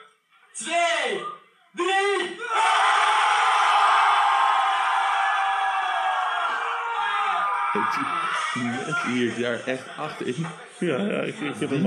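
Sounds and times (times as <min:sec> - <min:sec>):
speech: 0:00.6 - 0:02.7, 0:07.8 - 0:11.8
people shouting: 0:02.0 - 0:09.0
group of people screaming loudly together: 0:02.4 - 0:08.6.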